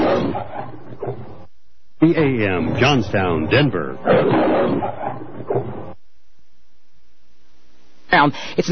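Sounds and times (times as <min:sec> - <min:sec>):
loud lion roar: 0:00.0 - 0:01.5, 0:03.9 - 0:06.0
man announcing an AM radio station ident: 0:02.0 - 0:04.0
speech: 0:02.0 - 0:05.1, 0:08.1 - 0:08.7.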